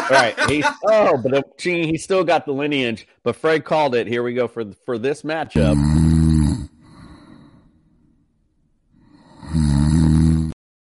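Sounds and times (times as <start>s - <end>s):
laughter: 0.0s - 1.4s
speech: 0.1s - 6.4s
snoring sound effect: 5.6s - 7.7s, 9.0s - 10.6s.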